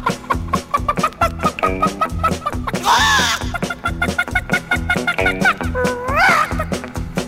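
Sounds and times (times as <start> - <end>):
laughter: 0.0 - 6.9
steady rhythmic backing: 0.0 - 7.2
voice imitating a frantic panicking chicken clucking and squawking: 0.1 - 6.8.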